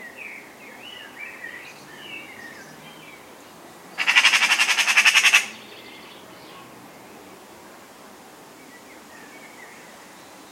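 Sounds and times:
Eurasian magpie Pica pica chattering: 0:04.0 - 0:05.7.

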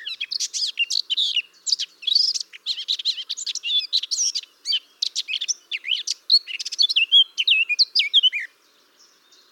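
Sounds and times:
Eurasian blackcap Sylvia atricapilla singing a fast rambling warble: 0:00.0 - 0:09.5.

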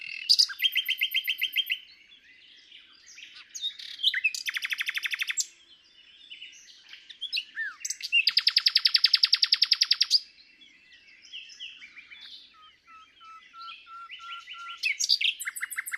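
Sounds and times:
common nightingale Luscinia megarhynchos song: 0:00.0 - 0:15.9.

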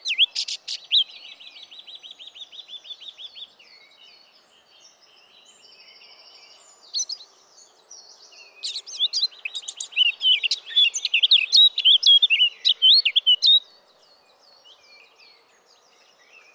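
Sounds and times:
Eurasian blackcap Sylvia atricapilla warbling song: 0:00.0 - 0:03.4, 0:08.3 - 0:13.6.

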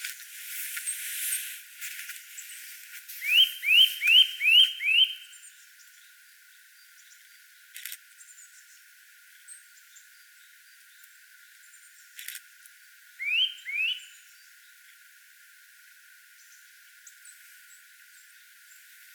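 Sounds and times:
Eurasian nuthatch, Sitta europaea, calling: 0:02.3 - 0:05.4, 0:13.2 - 0:14.2.

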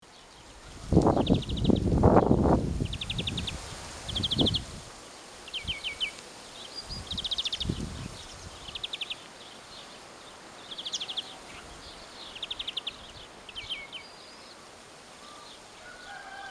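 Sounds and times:
bird chirps: 0:00.2 - 0:04.6, 0:05.5 - 0:09.9, 0:10.6 - 0:14.6
European greenfinch Chloris chloris giving twittering trills: 0:01.1 - 0:04.6, 0:05.5 - 0:09.9, 0:10.6 - 0:14.5.

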